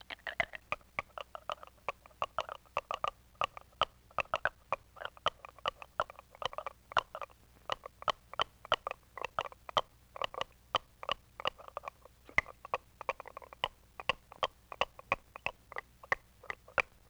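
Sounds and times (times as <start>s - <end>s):
steady teeth clacking in vintage cartoon foley style: 0.0s - 17.0s.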